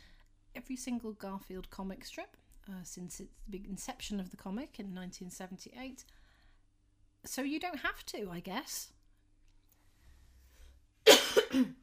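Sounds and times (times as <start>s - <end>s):
speech: 0.6s - 6.2s, 7.2s - 9.0s, 11.5s - 11.8s
person coughing: 11.1s - 11.8s.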